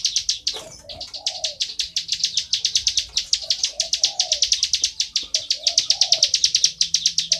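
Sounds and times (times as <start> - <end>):
bar-winged prinia giving fast high sharp chip notes: 0.0 - 7.3.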